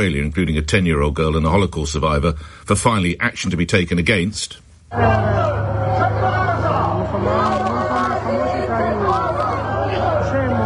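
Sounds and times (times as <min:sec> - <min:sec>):
speech: 0:00.0 - 0:06.4, 0:07.1 - 0:08.9
protest crowd chanting a slogan: 0:04.9 - 0:10.6.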